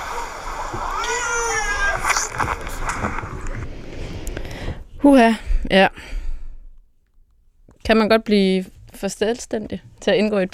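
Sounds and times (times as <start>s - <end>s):
water splashing in a swimming pool: 0.0s - 3.6s
speech: 5.0s - 6.2s, 7.9s - 10.5s.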